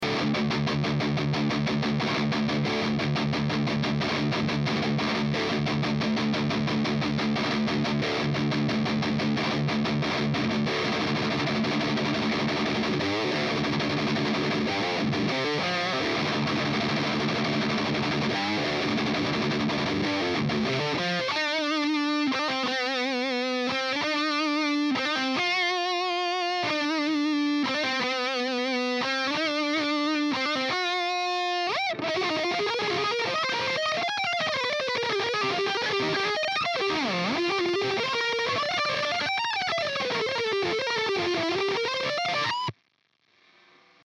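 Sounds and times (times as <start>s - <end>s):
electric guitar with Fishman Fluence Modern V1 pickups through JCM800 amplifier: 0.0s - 44.0s.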